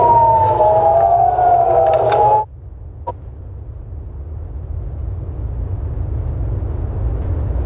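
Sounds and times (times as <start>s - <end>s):
air raid siren in Jerusalem wailing: 0.0s - 2.5s
low rumbling outdoor background: 0.0s - 7.6s.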